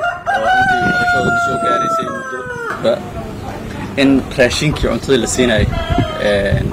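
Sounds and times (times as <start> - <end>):
rooster crowing at a poultry centre in Jubbaland: 0.0 - 2.9, 5.6 - 6.3
chickens at a poultry centre in Jubbaland: 0.0 - 6.7
speech: 1.2 - 6.7.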